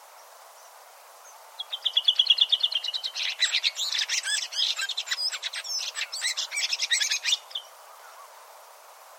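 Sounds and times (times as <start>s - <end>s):
quiet hiss: 0.0s - 9.1s
bird chirping: 1.6s - 8.3s.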